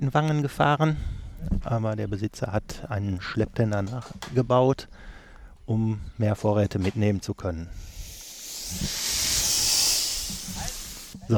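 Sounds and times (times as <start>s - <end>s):
speech: 0.0s - 5.1s, 5.7s - 8.0s, 8.7s - 9.0s
steam locomotive hissing with open cylinder cocks: 7.8s - 11.2s.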